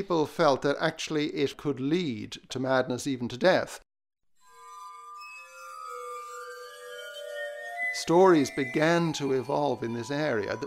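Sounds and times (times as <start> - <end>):
speech: 0.0 - 3.8, 8.0 - 10.6
glass harmonica tones: 4.4 - 10.6.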